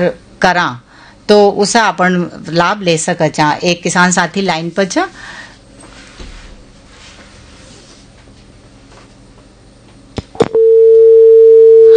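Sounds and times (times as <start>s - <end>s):
speech: 0.0s - 5.4s
faint hum: 0.0s - 11.9s
telephone busy tone after call disconnects: 10.4s - 11.9s.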